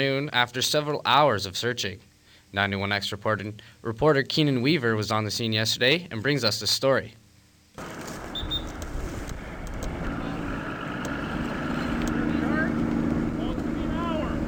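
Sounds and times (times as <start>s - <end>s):
speech: 0.0s - 7.2s
wind rumble: 7.8s - 14.4s
police boat motor droning on the water: 9.4s - 14.4s.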